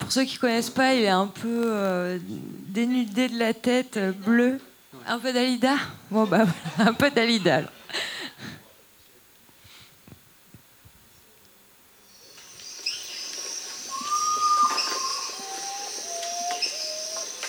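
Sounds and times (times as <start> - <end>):
speech: 0.1 - 8.1
high insect drone: 12.0 - 17.4
common potoo singing mournful whistled notes in descending minor third: 12.1 - 17.4.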